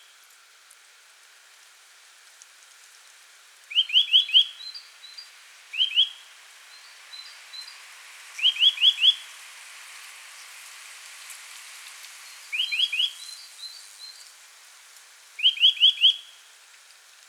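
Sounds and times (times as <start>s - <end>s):
Eurasian nuthatch Sitta europaea calls: 3.7s - 7.7s, 8.4s - 9.2s, 12.5s - 14.2s, 15.4s - 16.3s.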